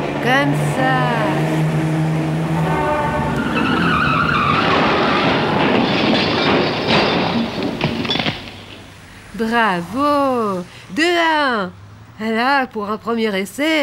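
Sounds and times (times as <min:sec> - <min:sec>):
car tires screeching in a long wavering skid: 0:00.0 - 0:08.0
speech: 0:00.2 - 0:01.9, 0:09.4 - 0:13.8
car crashing into another car: 0:03.6 - 0:08.9.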